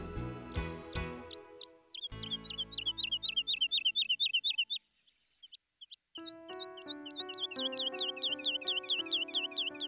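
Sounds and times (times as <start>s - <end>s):
soft sustained music: 0.0s - 4.7s, 6.1s - 9.8s
nightingale singing: 0.6s - 9.8s.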